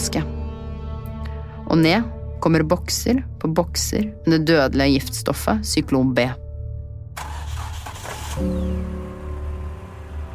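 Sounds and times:
speech: 0:01.7 - 0:06.4, 0:08.4 - 0:09.0
heavy truck engine starting and idling: 0:07.2 - 0:10.3.

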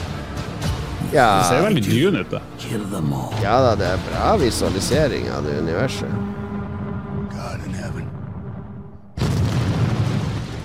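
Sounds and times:
quieter film trailer soundtrack: 0:00.0 - 0:10.6
speech: 0:01.1 - 0:06.4
heavy explosion from a film trailer: 0:09.2 - 0:10.6.

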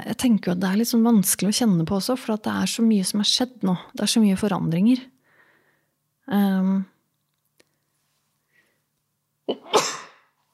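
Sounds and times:
speech: 0:00.1 - 0:05.1, 0:06.3 - 0:06.9, 0:09.5 - 0:10.0
person sneezing: 0:09.5 - 0:10.3.

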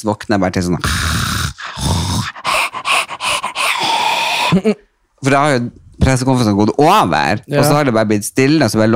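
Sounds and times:
speech: 0:00.0 - 0:01.3, 0:04.5 - 0:08.9
person imitating heavy panting: 0:00.8 - 0:04.8.

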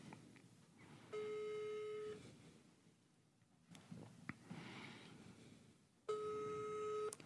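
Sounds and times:
phone line ringing tone: 0:01.1 - 0:02.2, 0:06.1 - 0:07.1.

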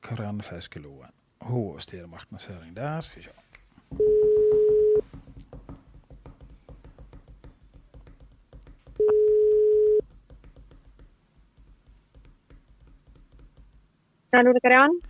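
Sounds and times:
speech: 0:00.1 - 0:04.2, 0:14.4 - 0:15.0
phone ringback tone beep: 0:04.0 - 0:05.0, 0:09.0 - 0:10.0.

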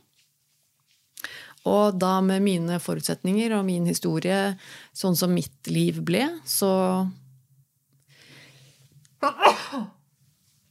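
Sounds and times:
speech: 0:01.6 - 0:07.2, 0:09.2 - 0:10.0
loud sneeze: 0:09.2 - 0:10.0.

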